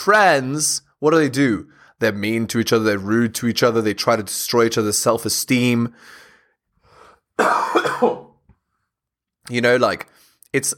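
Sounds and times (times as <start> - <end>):
speech: 0.0 - 6.2, 7.4 - 8.3, 9.5 - 10.7
raspy cough: 7.4 - 8.4.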